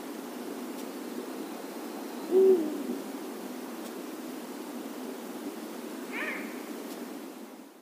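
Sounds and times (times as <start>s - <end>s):
steady background hiss: 0.0s - 7.7s
Eurasian eagle-owl Bubo bubo deep hoot: 2.3s - 3.0s, 6.1s - 6.6s.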